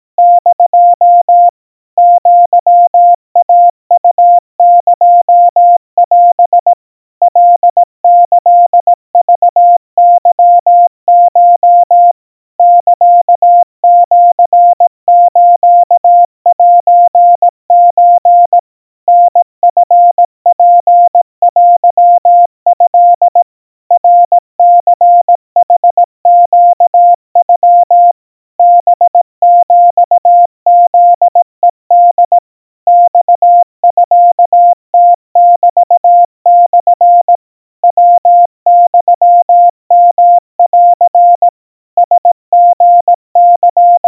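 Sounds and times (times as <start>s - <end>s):
crispy Morse code tones at 700 Hz: 0.2s - 6.6s, 7.3s - 44.0s.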